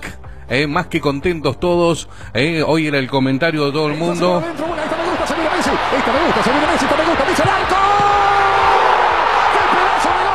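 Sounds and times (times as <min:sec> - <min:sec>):
speech: 0:00.5 - 0:08.0
crowd shouting and cheering in celebration of a football goal: 0:04.0 - 0:10.3.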